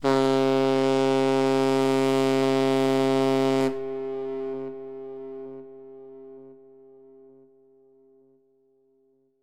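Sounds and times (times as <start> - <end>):
big ship whistle: 0.0 - 7.2.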